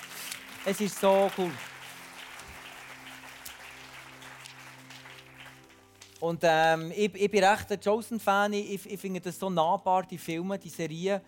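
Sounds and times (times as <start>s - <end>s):
audience applause: 0.0s - 6.2s
speech: 0.6s - 1.7s, 6.2s - 11.2s.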